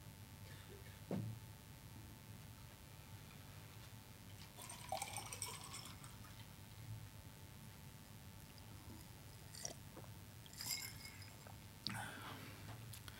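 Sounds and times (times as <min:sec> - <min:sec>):
low steady hum: 0:00.0 - 0:13.1
glass clink: 0:04.6 - 0:06.2, 0:08.9 - 0:09.8, 0:10.4 - 0:11.6
water splashing and trickling into a glass: 0:04.6 - 0:06.3, 0:10.4 - 0:11.4.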